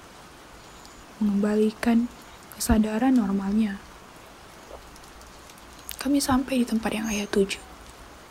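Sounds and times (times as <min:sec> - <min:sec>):
steady rain falling in an even hiss: 0:00.0 - 0:08.2
speech: 0:01.2 - 0:03.9, 0:06.0 - 0:07.7
faint scattered raindrop ticks: 0:01.8 - 0:08.0.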